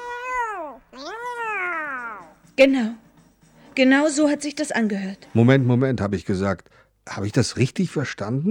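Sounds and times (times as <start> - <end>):
cat meowing: 0.0 - 2.4
speech: 2.6 - 3.0, 3.8 - 8.4.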